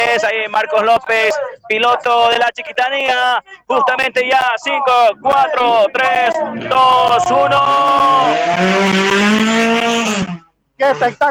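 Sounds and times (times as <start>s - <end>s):
speech: 0.2s - 11.2s
race car engine revving at an auto racing event: 5.2s - 11.2s.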